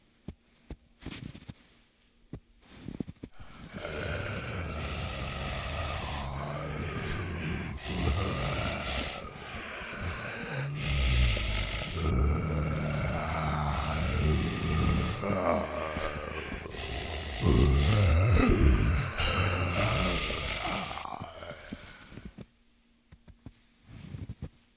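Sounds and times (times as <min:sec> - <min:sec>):
calm zombie groaning: 0:03.4 - 0:22.3
chain rattling: 0:03.4 - 0:22.3.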